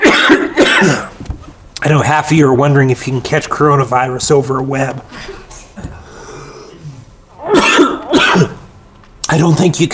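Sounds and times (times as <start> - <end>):
harsh rasping coughs from dust in throat: 0.0 - 1.2, 7.4 - 8.7
person clearing throat of lodged dust: 0.0 - 1.2, 7.4 - 8.7
speech: 1.8 - 5.9, 9.3 - 9.9.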